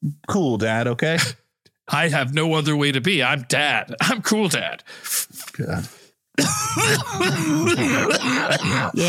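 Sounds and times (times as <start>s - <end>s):
speech: 0.0s - 9.0s
harsh raspy coughing after taking a hit: 6.4s - 9.0s
rough throat clearing: 6.4s - 9.0s.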